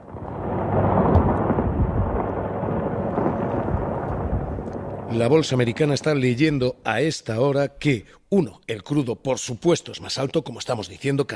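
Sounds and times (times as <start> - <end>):
missile explosions in a war rumbling: 0.0 - 6.9
speech: 5.2 - 11.3.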